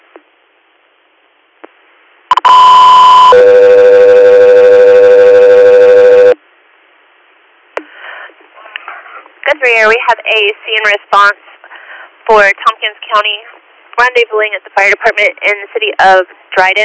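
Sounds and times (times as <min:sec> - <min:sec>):
faint radio static and crackle: 0:00.0 - 0:16.8
loud two-tone radio dispatch alert: 0:02.3 - 0:06.4
speech: 0:09.8 - 0:11.5, 0:12.3 - 0:16.8.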